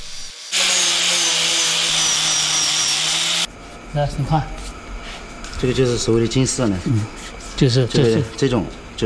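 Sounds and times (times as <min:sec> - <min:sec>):
power sander sanding a block of old golden-thread nanmu timber: 0:00.4 - 0:03.5
speech: 0:03.9 - 0:04.7, 0:05.6 - 0:09.0.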